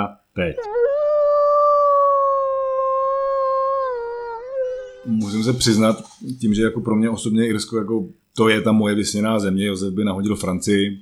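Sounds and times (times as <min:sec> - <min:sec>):
speech: 0:00.0 - 0:00.9, 0:05.0 - 0:11.0
wolf howling: 0:00.6 - 0:06.2.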